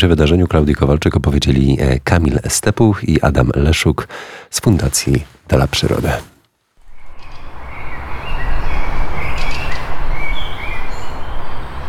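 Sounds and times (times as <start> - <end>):
speech: 0.0 - 6.3
birds chirping and singing outdoors in a park: 7.0 - 11.6.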